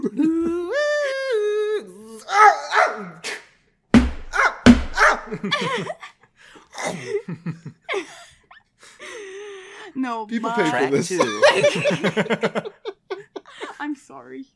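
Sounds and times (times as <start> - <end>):
person imitating a dog with yelps, snarls and chomps: 0.0 - 3.4
laughter: 5.0 - 6.3, 6.9 - 9.5, 10.4 - 14.0
speech: 10.1 - 12.7.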